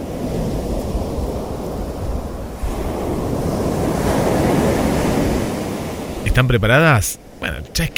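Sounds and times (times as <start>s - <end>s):
gusty wind rumble: 0.0s - 6.3s
ocean surf rolling in and out: 0.0s - 7.9s
speech: 6.4s - 7.9s.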